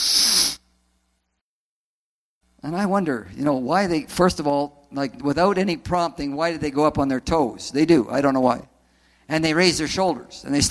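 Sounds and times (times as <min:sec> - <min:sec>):
adult imitating a schoolboy's deep sharp inhalation: 0:00.0 - 0:00.6
speech: 0:02.6 - 0:08.7, 0:09.3 - 0:10.6.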